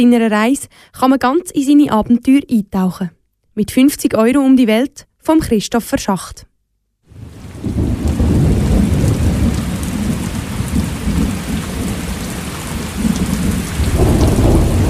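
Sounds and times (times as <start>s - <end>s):
speech: 0.0s - 6.5s
steady pouring rain: 7.1s - 14.8s
deep continuous rumbling thunder: 7.2s - 14.8s.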